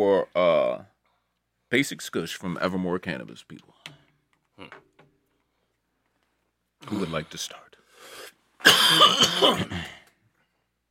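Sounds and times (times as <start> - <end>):
speech: 0.0 - 0.8, 1.7 - 4.0, 6.9 - 7.6, 8.6 - 10.0
person coughing raspy hacks: 8.6 - 10.0.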